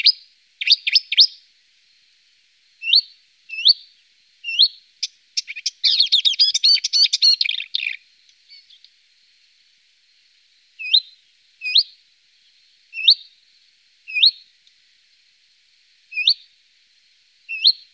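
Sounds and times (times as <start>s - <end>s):
marsh warbler singing: 0.0s - 1.4s, 2.8s - 8.9s, 10.8s - 13.4s, 14.1s - 14.6s, 16.1s - 16.6s, 17.5s - 17.9s.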